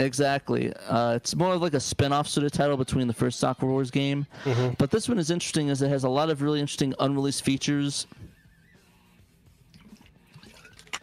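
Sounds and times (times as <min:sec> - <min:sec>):
speech: 0:00.0 - 0:08.3
water sloshing: 0:09.8 - 0:11.0.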